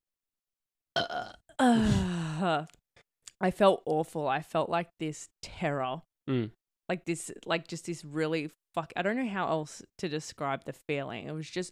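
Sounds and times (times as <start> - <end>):
person burping: 1.0 - 2.4, 6.3 - 6.6
speech: 1.0 - 2.8, 3.4 - 11.7.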